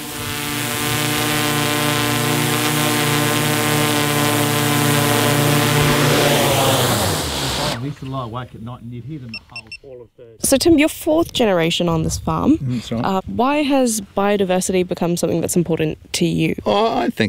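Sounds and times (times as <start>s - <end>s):
drone rotor whine while flying back and landing: 0.0s - 7.8s
speech: 8.3s - 17.2s.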